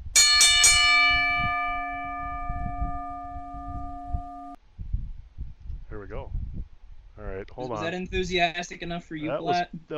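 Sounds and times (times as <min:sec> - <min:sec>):
metal wrestling ring bell being struck: 0:00.0 - 0:04.6
speech: 0:07.6 - 0:09.9.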